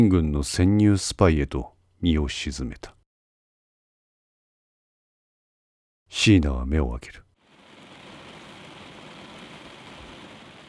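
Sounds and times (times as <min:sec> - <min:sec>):
speech: 0:00.0 - 0:03.0, 0:06.1 - 0:07.2
steady rain pouring down outside: 0:07.4 - 0:10.6.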